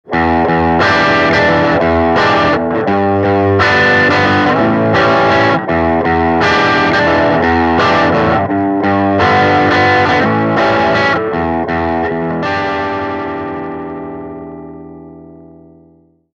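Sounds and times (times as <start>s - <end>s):
Les Paul electric guitar voicing through Fender Super Champ X amplifier: 0.0s - 16.2s.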